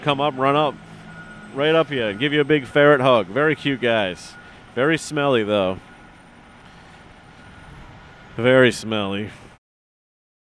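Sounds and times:
speech: 0:00.0 - 0:00.8, 0:01.5 - 0:05.9, 0:08.4 - 0:09.4
loud truck engine rumbling while passing: 0:00.0 - 0:09.6.

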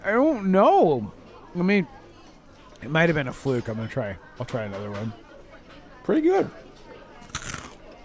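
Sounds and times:
speech: 0:00.0 - 0:02.0, 0:02.8 - 0:05.2, 0:06.1 - 0:06.7
person biting into crunchy breaded food: 0:07.2 - 0:07.9.

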